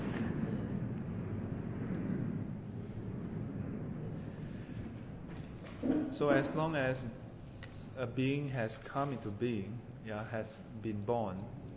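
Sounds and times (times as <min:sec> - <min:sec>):
airplane passing overhead: 0:00.0 - 0:07.6
speech: 0:05.8 - 0:07.2, 0:08.0 - 0:11.6.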